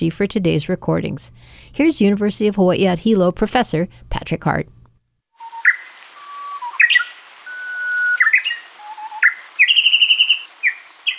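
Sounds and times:
speech: 0.0s - 4.8s
Japanese bush warbler singing: 5.4s - 11.1s.

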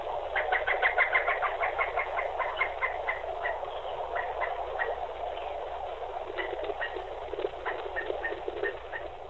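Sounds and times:
Pileated Woodpecker calling in southeast Dallas County, Texas: 0.3s - 9.2s.

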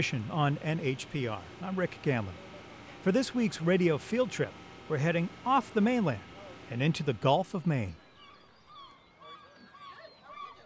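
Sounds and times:
speech: 0.0s - 8.0s
seagulls calling in a gull colony on an island in the Gulf of Maine: 7.8s - 10.6s.

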